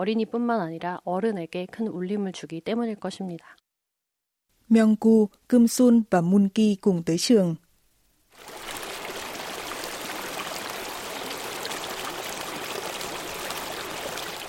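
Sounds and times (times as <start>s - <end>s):
speech: 0.0s - 3.6s, 4.7s - 7.6s
flowing stream rushing under a single-log footbridge: 8.4s - 14.4s.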